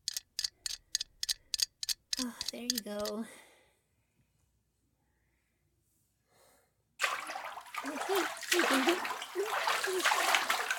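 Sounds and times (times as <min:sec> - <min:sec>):
speech: 0:02.2 - 0:03.4
water splashing and sloshing from a head dunked into a tub: 0:07.0 - 0:10.7.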